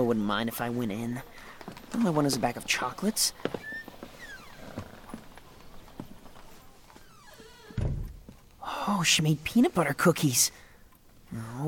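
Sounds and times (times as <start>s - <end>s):
speech: 0.0s - 3.6s, 8.9s - 10.6s, 11.3s - 11.6s
shop front door hinge squeaking: 3.4s - 5.9s, 6.6s - 8.2s.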